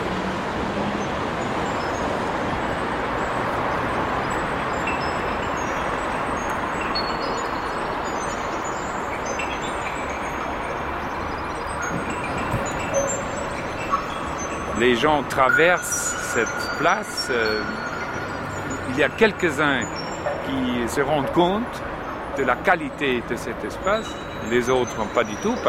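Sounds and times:
muffled road traffic heard through walls from indoors: 0.0 - 25.6
speech: 14.8 - 17.8, 19.0 - 25.6.

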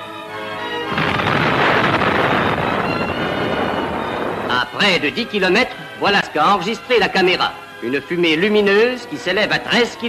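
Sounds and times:
first atomic bomb test explosion at night in the New Mexico desert: 0.9 - 5.2
speech: 4.8 - 10.0.

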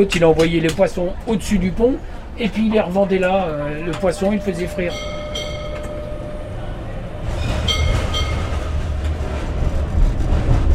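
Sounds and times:
speech: 0.0 - 5.2
tram rolling along rails: 0.0 - 10.7
high metallic squeals of a tram: 3.8 - 8.8.

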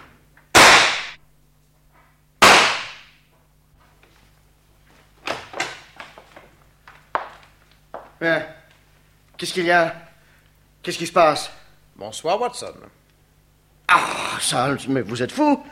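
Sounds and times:
revolver shots fired in a room: 0.6 - 1.2, 2.4 - 3.1
speech: 8.2 - 8.6, 9.4 - 10.0, 10.8 - 13.0, 13.9 - 15.6.

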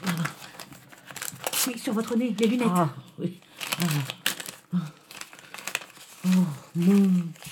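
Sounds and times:
crisp rustling and crinkling of letter paper being unfolded: 0.0 - 2.9, 3.5 - 7.5
speech: 1.6 - 5.0, 6.2 - 7.4.

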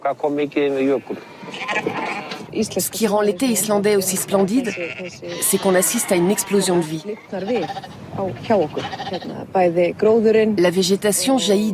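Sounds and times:
speech: 0.0 - 11.7
sheep bleating on mountain slopes in summer: 0.8 - 2.5, 4.3 - 9.4.

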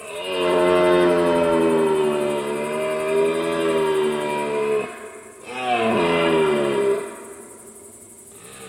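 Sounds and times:
red deer stag bellowing during the rut: 0.0 - 7.3.

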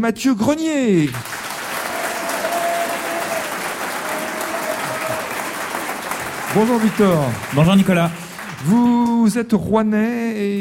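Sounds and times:
speech: 0.0 - 1.3, 6.5 - 10.5
audience clapping for quiz contestants: 1.0 - 9.4.

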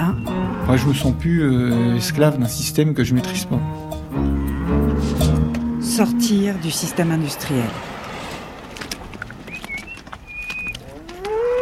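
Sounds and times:
cow mooing loudly: 0.0 - 2.1, 3.3 - 7.7, 10.8 - 11.6
speech: 0.1 - 4.3, 6.0 - 8.0
light shuffling: 6.9 - 11.6.

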